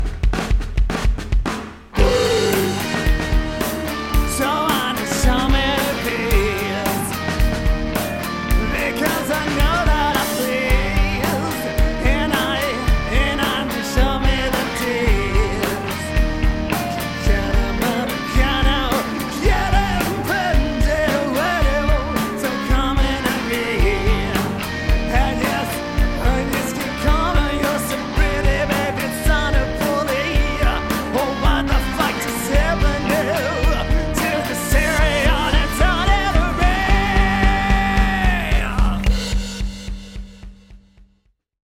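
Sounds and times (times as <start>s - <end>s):
grunge music: 0.0s - 41.1s.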